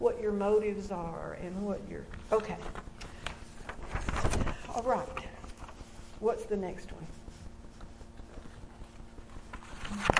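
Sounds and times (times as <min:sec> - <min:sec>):
speech: 0:00.3 - 0:02.9, 0:04.4 - 0:05.2, 0:06.2 - 0:07.2, 0:09.9 - 0:10.1
papers being shuffled and gathered: 0:02.0 - 0:10.1.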